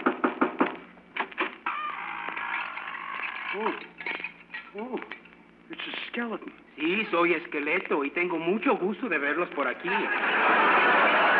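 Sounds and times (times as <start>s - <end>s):
sharp knocks on a door: 0.0s - 0.8s
long sustained creaking tone: 1.4s - 5.4s
speech: 3.6s - 3.9s, 4.7s - 11.3s
laughter: 9.8s - 11.3s.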